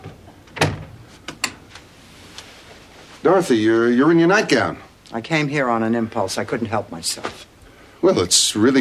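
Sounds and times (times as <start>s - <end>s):
door opening at night with latch thump: 0.0s - 0.9s
speech: 3.2s - 8.7s.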